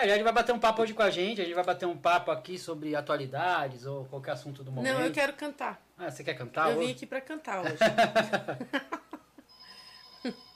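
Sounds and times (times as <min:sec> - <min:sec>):
speech: 0:00.0 - 0:09.0, 0:10.2 - 0:10.5
laughter: 0:07.6 - 0:09.3
telephone ringing with bright trilling pulses: 0:09.5 - 0:10.5.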